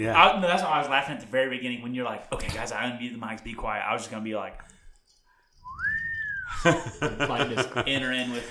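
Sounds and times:
speech: 0.0s - 4.8s, 6.6s - 8.4s
toy whistle blown: 5.6s - 6.6s
laughter: 6.5s - 8.4s.

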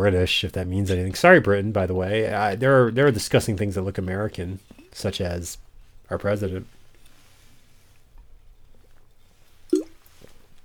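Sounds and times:
speech: 0.0s - 6.8s
soft swallow: 9.7s - 10.4s
wet slurping sip of water: 9.7s - 10.6s.

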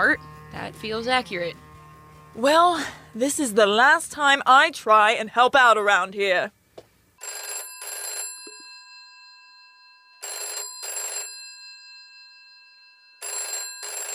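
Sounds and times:
speech: 0.0s - 1.6s, 2.3s - 6.6s
old-fashioned telephone bell ringing: 7.2s - 14.1s.

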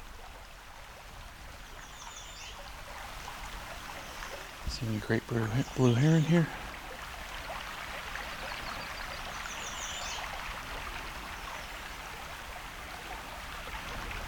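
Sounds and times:
river water flowing: 0.0s - 14.2s
speech: 4.8s - 6.6s.

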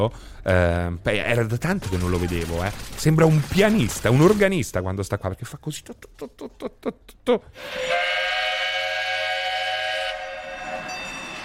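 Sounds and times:
speech: 0.0s - 8.5s
loud sustained steam whistle: 7.6s - 11.4s
train sound effect chugs played on a mixer: 7.6s - 11.4s.

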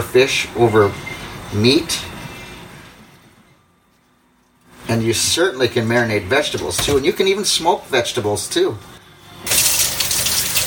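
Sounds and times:
speech: 0.0s - 2.1s, 4.9s - 9.6s
tap water running over hands being washed with soap: 9.5s - 10.6s.

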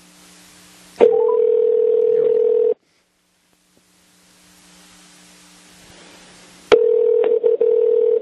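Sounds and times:
low line hiss: 0.0s - 6.8s
loud steady telephone dial tone on a line calling out of state: 1.0s - 2.8s, 6.7s - 8.2s.

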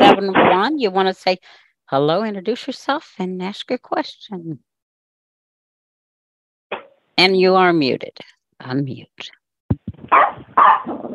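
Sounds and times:
speech: 0.2s - 4.7s, 7.2s - 9.4s, 10.1s - 11.1s
puppy barking: 10.1s - 11.1s.

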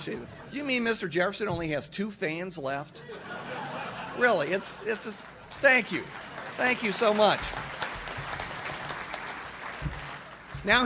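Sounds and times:
speech: 0.0s - 3.6s, 4.2s - 7.7s, 10.6s - 10.8s
laughter: 3.0s - 5.7s
audience applause: 4.9s - 10.8s.

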